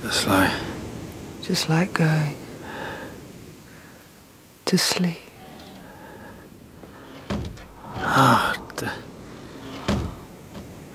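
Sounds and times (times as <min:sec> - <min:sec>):
speech: 0:00.0 - 0:00.7, 0:01.5 - 0:02.4, 0:04.7 - 0:05.2, 0:08.2 - 0:09.0
screen door creaking open with a drawn-out squeal: 0:05.3 - 0:10.9
person exhaling: 0:05.4 - 0:10.9.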